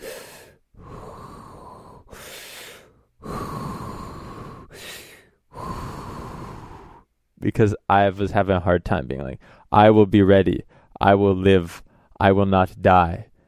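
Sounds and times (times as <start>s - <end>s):
slow deep breathing exercise: 0.0s - 7.2s, 9.4s - 9.7s, 10.6s - 11.0s, 11.8s - 12.2s, 13.3s - 13.4s
speech: 7.4s - 13.3s.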